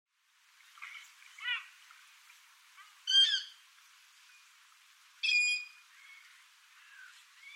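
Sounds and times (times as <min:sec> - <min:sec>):
common moorhen harsh nasal croaking calls: 0:02.8 - 0:03.6, 0:05.2 - 0:07.5.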